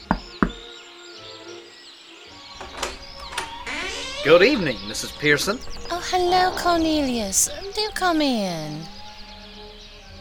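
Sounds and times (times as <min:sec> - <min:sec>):
knocking on a door: 0:00.0 - 0:00.7
faint birdsong chirping: 0:00.0 - 0:10.1
speech: 0:04.2 - 0:09.0.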